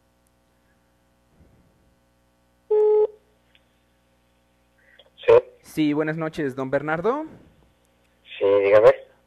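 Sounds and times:
telephone line tone as a call is being dialed: 2.7s - 3.2s
speech: 5.8s - 7.5s.

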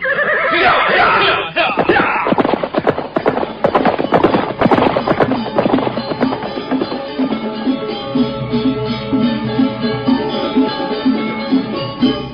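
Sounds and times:
horses neighing: 0.0s - 7.2s
horses galloping away from a temple courtyard: 1.8s - 12.2s.

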